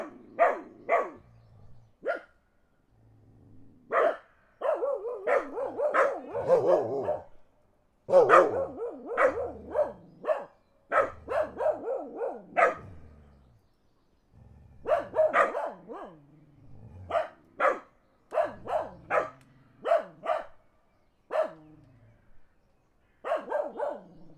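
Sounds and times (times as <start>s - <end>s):
dogs barking in the countryside: 0.0s - 1.2s, 2.0s - 2.3s, 3.9s - 7.4s, 8.1s - 13.1s, 14.8s - 16.2s, 17.0s - 20.6s, 21.3s - 21.7s, 23.2s - 24.3s.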